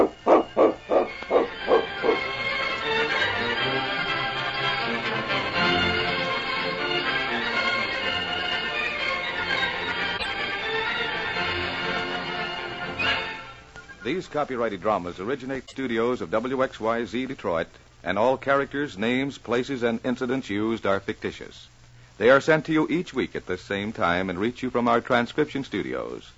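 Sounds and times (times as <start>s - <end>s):
dog barking: 0.0s - 2.2s
orchestral music: 0.0s - 14.1s
speech: 14.2s - 26.3s.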